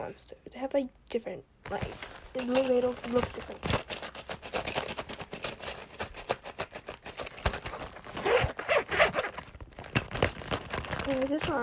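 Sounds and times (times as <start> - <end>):
speech: 0.1 - 4.0, 11.1 - 11.6
zipper on a small strawberry milk carton pencil case pulled open and closed: 6.9 - 11.6.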